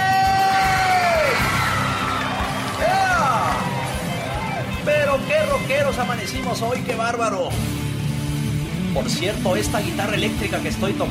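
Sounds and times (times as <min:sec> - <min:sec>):
loud crowd shouting and whooping in cheer for women: 0:00.0 - 0:06.7
speech: 0:05.6 - 0:07.8, 0:09.0 - 0:11.0.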